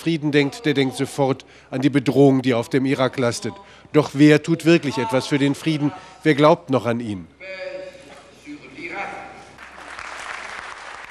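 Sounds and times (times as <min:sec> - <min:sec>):
speech: 0:00.0 - 0:07.8
crowd applauding a papal envoy: 0:09.6 - 0:11.0.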